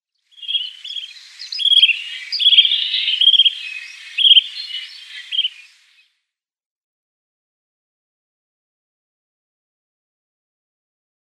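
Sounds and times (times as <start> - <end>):
Greater Sandplover call: 0.3 - 6.1.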